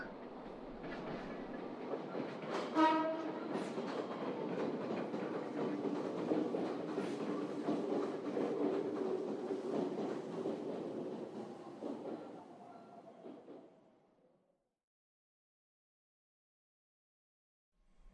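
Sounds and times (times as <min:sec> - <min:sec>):
train arriving at a station: 0:00.0 - 0:13.8.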